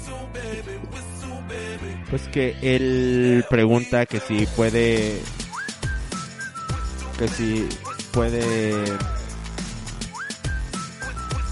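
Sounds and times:
speech: 2.1 - 5.4, 7.2 - 9.1
rhythmic music with a steady thumping beat and bass: 4.4 - 11.5
person whistling a melody: 5.2 - 11.5.

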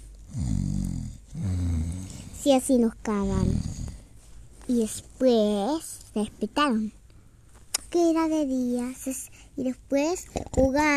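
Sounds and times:
voice imitating snoring: 0.3 - 2.5, 3.2 - 4.1
speech: 2.4 - 3.7, 4.7 - 7.0, 7.9 - 10.9.

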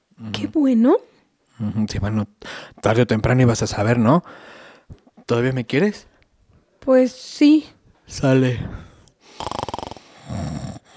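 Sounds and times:
speech: 0.2 - 6.1, 6.8 - 8.9
man snoring: 9.2 - 10.9.

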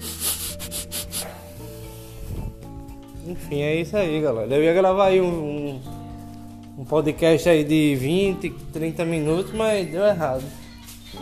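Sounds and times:
dog sniffing at the microphone: 0.0 - 2.6
speech: 3.3 - 6.0, 6.8 - 11.2.

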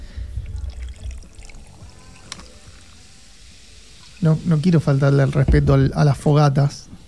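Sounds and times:
liquid pouring over ice cubes: 0.4 - 5.5
speech: 4.2 - 6.9.

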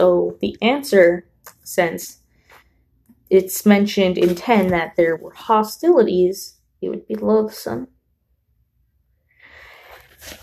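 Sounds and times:
speech: 0.0 - 2.2, 3.3 - 7.9, 10.2 - 10.4
heavy breathing: 9.3 - 10.4.

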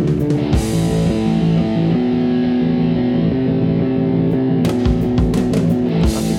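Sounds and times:
thick sustained rock guitar chords: 0.0 - 6.3
rock song drum hits: 4.6 - 6.3.

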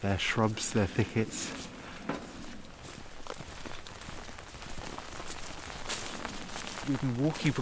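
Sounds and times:
speech: 0.0 - 1.7, 6.9 - 7.6
rain falling in a hornbeam and oak forest at night: 0.0 - 7.6.

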